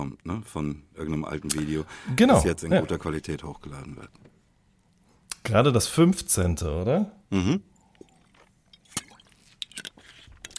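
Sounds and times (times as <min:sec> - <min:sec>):
speech: 0:00.0 - 0:04.3, 0:05.4 - 0:07.7
two people gulping and swallowing while drinking: 0:07.3 - 0:09.8.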